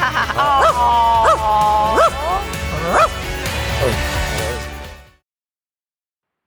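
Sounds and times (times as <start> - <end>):
laughter: 0.0 - 3.0
puppy barking: 0.6 - 1.4, 2.0 - 3.2, 3.8 - 4.6
puppy whining: 0.6 - 3.2, 3.8 - 4.7.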